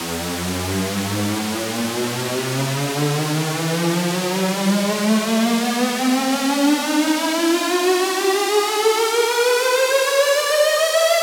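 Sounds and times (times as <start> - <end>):
square wave synth in E: 0.0 - 11.1.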